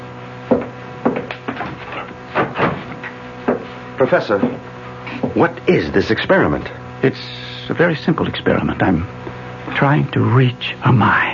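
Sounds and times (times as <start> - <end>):
door being closed with wooden thumps and clunks: 0.5 - 3.7
speech: 4.0 - 4.7, 5.3 - 11.3.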